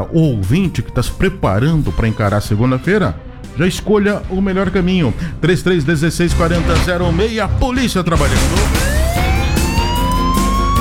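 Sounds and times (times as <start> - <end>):
speech: 0.1 - 8.9
fire engine siren wailing: 8.7 - 10.8.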